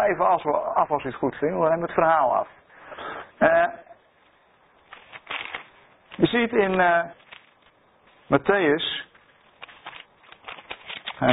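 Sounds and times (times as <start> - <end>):
speech: 0.1 - 3.9, 6.2 - 7.2, 8.3 - 9.1, 11.2 - 11.3
book page turning: 4.8 - 8.3, 9.3 - 11.3.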